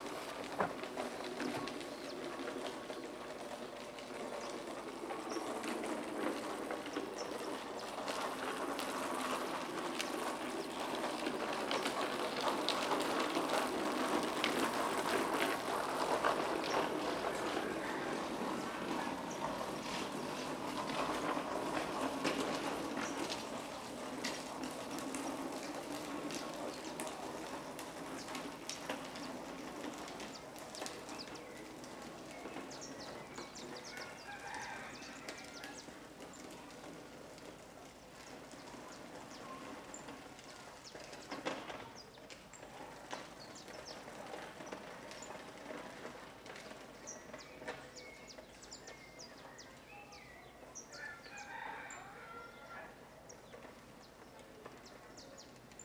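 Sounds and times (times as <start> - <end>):
baby stroller wheels on asphalt in the Cerrado: 0.0 - 55.8.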